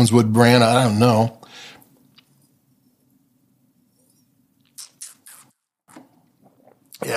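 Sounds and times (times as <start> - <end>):
speech: 0.0 - 1.4, 7.0 - 7.1
sipping from a glass of wine: 4.7 - 6.9.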